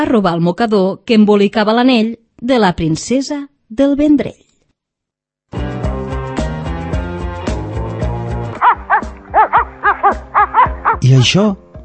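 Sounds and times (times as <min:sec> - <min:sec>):
speech: 0:00.0 - 0:04.4, 0:11.0 - 0:11.6
loud plucked musical passage: 0:05.6 - 0:11.1
dog barking in high sharp yaps: 0:08.6 - 0:11.1.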